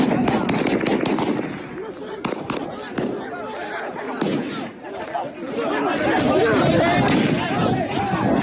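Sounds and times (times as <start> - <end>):
sharp gunshot cracks: 0.0 - 3.5, 4.1 - 4.7, 6.8 - 8.4
crowd shouting and chattering outdoors at street protest: 0.0 - 8.4.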